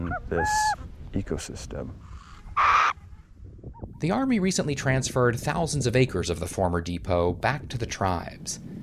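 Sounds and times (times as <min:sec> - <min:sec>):
speech: 0:00.2 - 0:02.2, 0:04.0 - 0:08.8
burrowing owl screech: 0:02.0 - 0:03.0.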